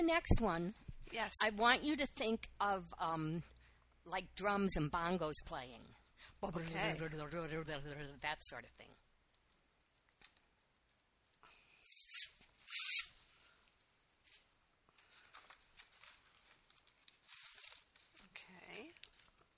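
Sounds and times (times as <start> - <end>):
speech: 0.0 - 9.0
plastic bag crinkling as an item is unwrapped: 15.2 - 19.5.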